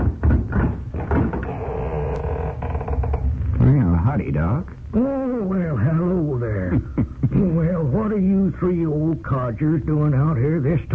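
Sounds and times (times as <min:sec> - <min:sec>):
door creaking as it swings open: 0:00.0 - 0:03.8
speech: 0:04.1 - 0:10.9.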